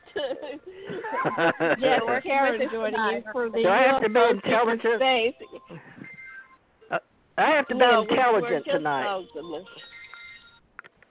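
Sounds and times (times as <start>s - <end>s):
laughter: 0.0s - 2.9s
speech: 0.2s - 5.9s, 6.9s - 10.0s
phone ringing with a thin electronic ringtone: 5.4s - 7.0s, 7.8s - 10.7s.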